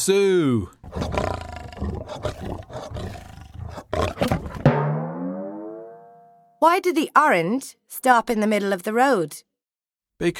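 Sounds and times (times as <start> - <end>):
speech: 0.0 - 3.3, 6.6 - 9.5, 10.2 - 10.3
lion roaring: 0.8 - 4.7.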